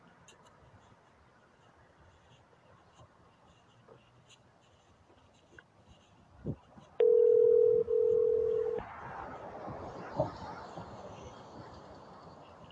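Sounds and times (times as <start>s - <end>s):
telephone dial tone after a dropped call: 7.0s - 8.8s.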